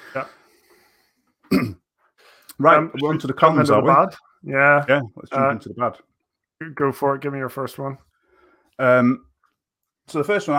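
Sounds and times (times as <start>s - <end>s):
speech: 0.1s - 0.4s, 2.6s - 8.1s, 8.8s - 9.3s, 10.1s - 10.5s
person with a week-long cough coughing: 1.5s - 1.9s.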